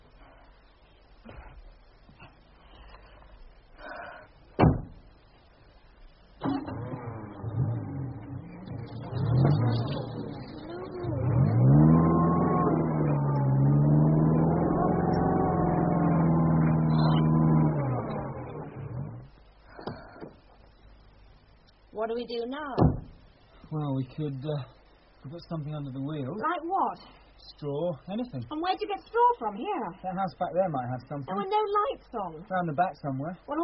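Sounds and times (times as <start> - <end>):
stuck car engine starting and revving after being pushed: 6.4 - 19.4
speech: 22.1 - 22.9, 23.7 - 33.6.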